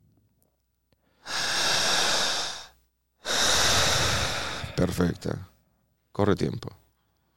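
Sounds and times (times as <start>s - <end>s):
deep breathing exercise: 1.0s - 5.4s
speech: 4.8s - 5.5s, 6.2s - 6.8s.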